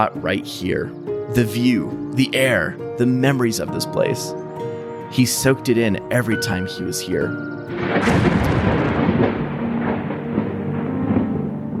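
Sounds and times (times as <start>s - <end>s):
speech: 0.0s - 4.4s, 5.1s - 9.4s
crack of lightning striking a tree: 7.8s - 11.7s
loud rolling thunder: 7.8s - 11.7s.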